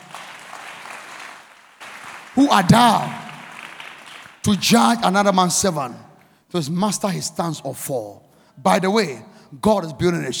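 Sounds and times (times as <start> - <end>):
audience clapping hands: 0.0 - 4.4
speech: 2.4 - 3.2, 4.4 - 10.3.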